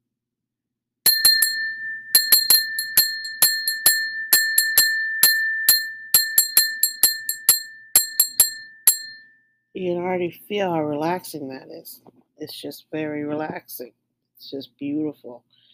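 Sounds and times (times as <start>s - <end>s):
crystal bell ringing: 1.1s - 9.4s
speech: 9.8s - 15.6s.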